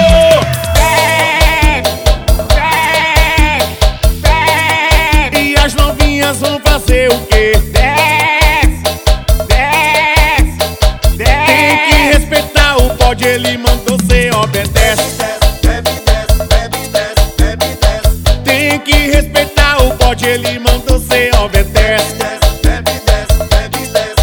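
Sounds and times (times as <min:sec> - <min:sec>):
driving music track with a thumping beat: 0:00.0 - 0:24.2
goat bleating: 0:00.7 - 0:05.4, 0:11.2 - 0:12.1.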